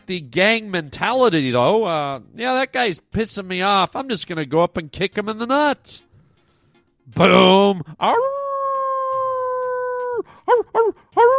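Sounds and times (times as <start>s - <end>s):
speech: 0.1s - 6.1s, 7.1s - 8.4s, 10.2s - 11.3s
man howling like a werewolf: 7.3s - 11.3s.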